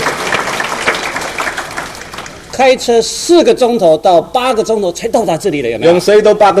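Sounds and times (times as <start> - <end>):
audience applauding: 0.0 - 2.5
speech: 2.6 - 6.5.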